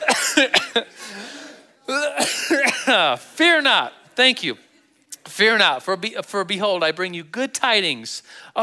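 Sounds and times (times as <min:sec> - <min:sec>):
man coughing harshly: 0:00.0 - 0:01.3, 0:01.9 - 0:03.2
soft raspy breath: 0:00.9 - 0:01.8, 0:08.2 - 0:08.6
speech: 0:03.1 - 0:08.6.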